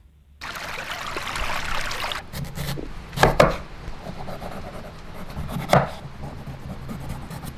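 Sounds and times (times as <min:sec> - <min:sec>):
flowing stream water: 0:00.4 - 0:02.3
knife chopping an onion on a board: 0:02.4 - 0:03.6, 0:05.3 - 0:06.4.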